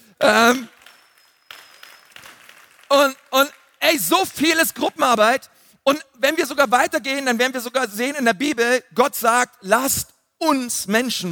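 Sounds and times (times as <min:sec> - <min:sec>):
speech: 0:00.2 - 0:00.8, 0:02.9 - 0:11.3
audience applause: 0:00.7 - 0:03.8.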